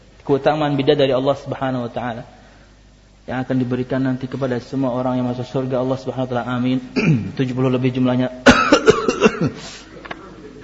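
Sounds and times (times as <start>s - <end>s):
speech: 0.3s - 2.4s, 3.3s - 8.5s, 9.2s - 9.9s
short cough: 7.0s - 7.4s, 8.5s - 9.8s.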